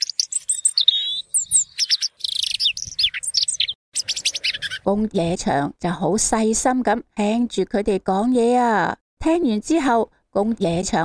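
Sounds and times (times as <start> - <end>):
sparrows chirping: 0.0 - 4.9
speech: 4.8 - 11.0.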